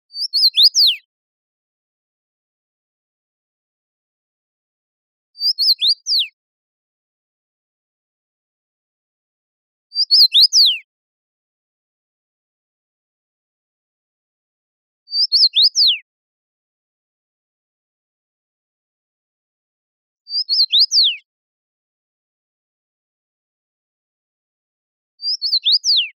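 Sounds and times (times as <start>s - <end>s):
common rosefinch Carpodacus erythrinus singing: 0.2s - 1.0s, 5.4s - 6.3s, 10.0s - 10.8s, 15.1s - 16.0s, 20.3s - 21.2s, 25.2s - 26.1s.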